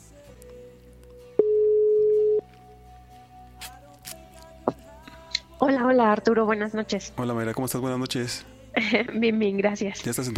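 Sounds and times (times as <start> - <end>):
telephone ringback tone while a call is being placed: 1.4 - 2.5
speech: 5.6 - 10.3.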